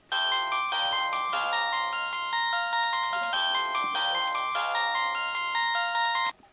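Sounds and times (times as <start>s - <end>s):
Samsung SGHE700 ringtone: 0.0s - 6.4s.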